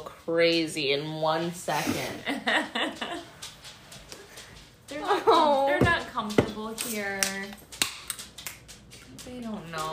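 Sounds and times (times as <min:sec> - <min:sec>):
dogs' paws pattering on a hard floor: 0:00.0 - 0:09.9
speech: 0:00.3 - 0:03.1, 0:05.1 - 0:07.6, 0:09.2 - 0:09.9.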